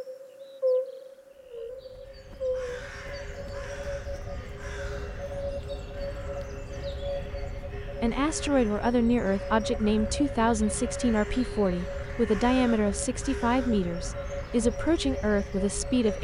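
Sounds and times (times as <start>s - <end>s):
faint droning tone: 1.1s - 16.2s
crows cawing in Bois de la Cambre park in Brussels, Belgium: 2.0s - 8.0s, 11.2s - 15.2s
speech: 8.0s - 16.2s.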